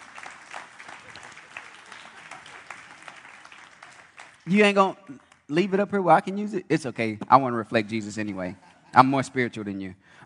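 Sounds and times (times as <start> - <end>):
crowd applauding: 0.0 - 6.0
speech: 4.5 - 10.2.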